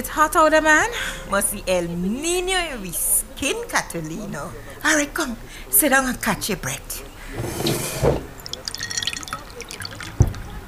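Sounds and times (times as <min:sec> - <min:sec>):
speech: 0:00.0 - 0:08.2
lime water poured into a glass: 0:08.3 - 0:10.5.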